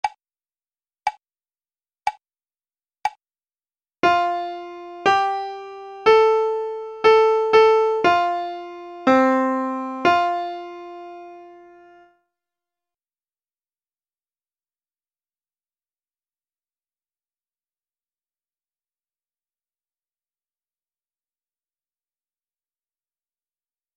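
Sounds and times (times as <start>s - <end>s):
melodic imitation: 4.0s - 12.0s.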